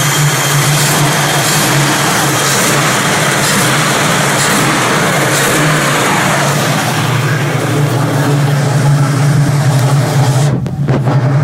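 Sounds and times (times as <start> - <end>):
1969 Camaro SS 350 small-block V8 engine idling: 0.0 - 11.4.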